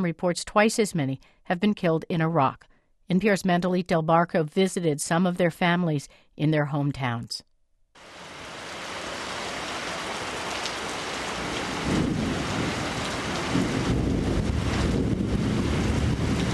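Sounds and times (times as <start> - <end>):
speech: 0.0 - 8.2
heavy tropical thunderstorm rain: 8.0 - 16.5
gusts of wind: 8.1 - 16.5
low rumbling thunder: 11.4 - 16.5.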